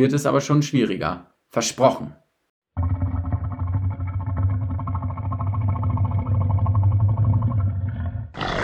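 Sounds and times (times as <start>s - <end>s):
speech: 0.0s - 2.2s
Nile crocodile giving a rumbling gurgling bellow: 2.8s - 8.6s.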